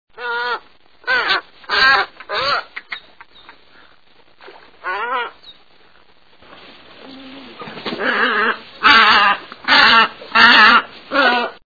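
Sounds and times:
tricolored heron calling: 0.2s - 4.0s, 4.8s - 5.7s, 8.0s - 11.6s.

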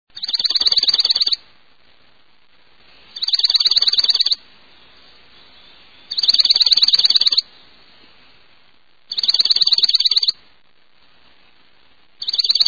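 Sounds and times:
dark-eyed junco calling: 0.1s - 1.5s, 3.0s - 8.2s, 9.1s - 10.4s, 12.2s - 12.6s.

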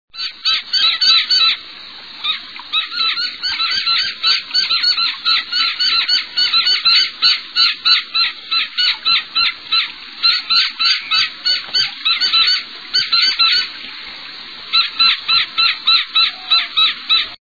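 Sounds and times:
Gila woodpecker songs: 0.2s - 13.9s, 14.7s - 17.4s.

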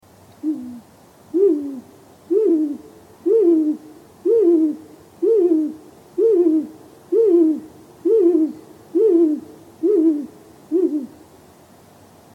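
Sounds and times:
Great Gray Owl songs: 0.4s - 11.2s.

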